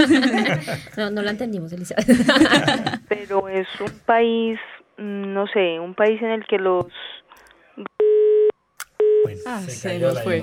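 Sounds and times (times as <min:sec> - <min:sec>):
laughter: 0:00.0 - 0:01.0, 0:02.0 - 0:03.1
speech: 0:00.0 - 0:07.2, 0:09.3 - 0:10.4
phone line busy tone beeps: 0:07.9 - 0:09.4.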